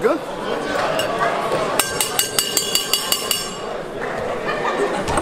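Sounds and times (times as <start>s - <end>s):
laughter: 0.1s - 1.8s, 3.6s - 5.2s
cowbell ringing: 1.8s - 3.7s.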